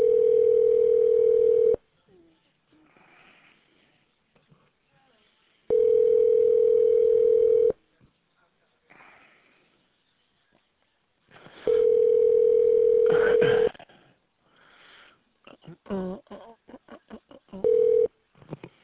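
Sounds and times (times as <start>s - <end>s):
telephone ringback tone of a call to a jewelry store: 0.0s - 1.8s, 5.7s - 7.8s, 11.7s - 13.1s, 17.6s - 18.1s
faint noise: 0.0s - 18.8s.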